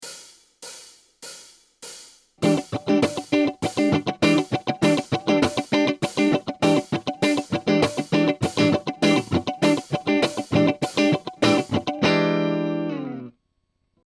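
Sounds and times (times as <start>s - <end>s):
basic cutting strumming: 2.4s - 13.3s.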